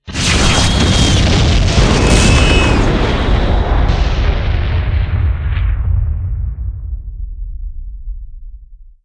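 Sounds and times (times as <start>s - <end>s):
large explosion: 0.0s - 8.8s.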